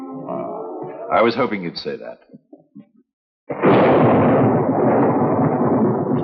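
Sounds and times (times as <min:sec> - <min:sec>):
speech: 0:01.1 - 0:02.3
thunderclap from an approaching storm at night: 0:03.5 - 0:06.2.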